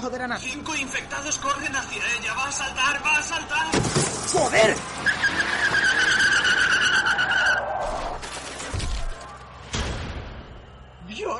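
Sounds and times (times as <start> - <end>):
speech: 0.0 - 5.8
car tires screeching in a skid: 3.9 - 9.4
bang: 7.8 - 10.8.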